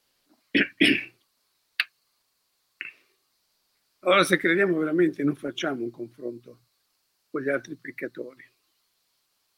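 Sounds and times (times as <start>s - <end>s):
person coughing harshly: 0.6s - 1.2s
throat clearing: 0.6s - 1.2s
speech: 4.1s - 6.7s, 7.3s - 8.5s.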